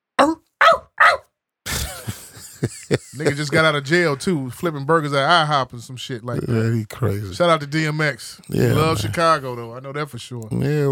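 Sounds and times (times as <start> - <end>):
speech: 0.2 - 0.4, 2.6 - 10.8
dog barking: 0.2 - 1.3
laughter: 1.7 - 4.4
dog growling: 8.5 - 9.4.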